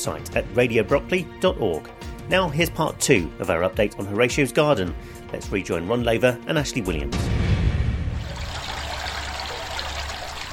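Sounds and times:
speech: 0.0 - 7.4
water trickling in a circular garden water feature: 8.2 - 10.5.

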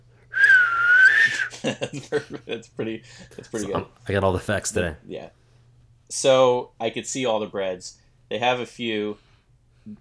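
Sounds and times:
person whistling a long tone imitating a spiraling football: 0.3 - 1.6
laughter: 1.4 - 3.6
speech: 1.6 - 5.4, 6.1 - 9.2.

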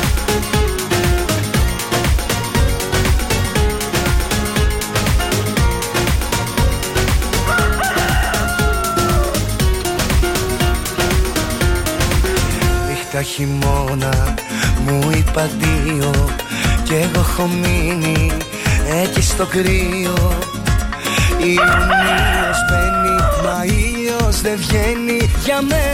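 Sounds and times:
loud music with a driving beat: 0.0 - 25.9
rooster crowing: 7.4 - 9.6, 21.6 - 23.7
speech: 13.4 - 20.6, 21.4 - 25.9.

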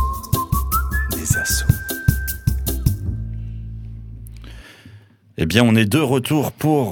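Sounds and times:
punchy beat in a radio show jingle: 0.0 - 3.2
whistled melody in a radio show jingle: 0.0 - 3.2
speech: 1.3 - 1.7, 5.4 - 6.8.

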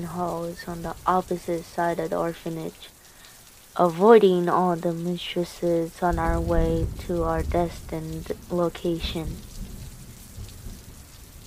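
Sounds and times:
speech: 0.0 - 3.0, 3.8 - 9.5
steady rain: 0.0 - 11.4
low rumbling thunder: 6.0 - 11.4.

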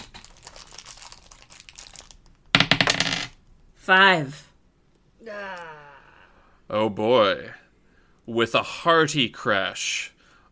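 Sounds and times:
new dice rustling and rattling as they are pulled from a bag: 0.0 - 3.4
speech: 3.9 - 4.5, 6.7 - 7.6, 8.3 - 10.2.

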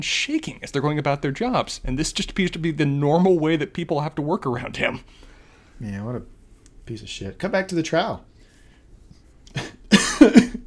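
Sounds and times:
speech: 0.0 - 6.3, 6.9 - 8.3, 9.5 - 10.6
person coughing: 9.5 - 10.6.

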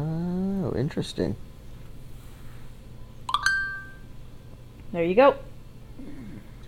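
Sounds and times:
faint hum: 0.0 - 6.6
speech: 0.8 - 1.5, 4.9 - 6.1
phone screen-reader shortcut electronic chime: 3.3 - 4.1.

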